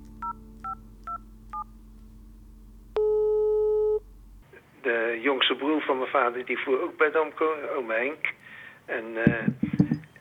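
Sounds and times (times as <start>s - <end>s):
steady louder telephone line tone: 0.0s - 4.4s
telephone touch-tone dialing beeps: 3.0s - 4.0s
speech: 5.3s - 9.7s.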